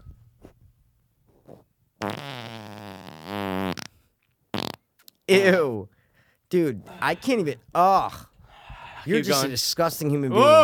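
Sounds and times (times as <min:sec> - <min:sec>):
loud fart with a buzzy wavering pitch: 0:02.0 - 0:04.9
speech: 0:05.3 - 0:05.9, 0:06.5 - 0:08.3, 0:09.0 - 0:10.6.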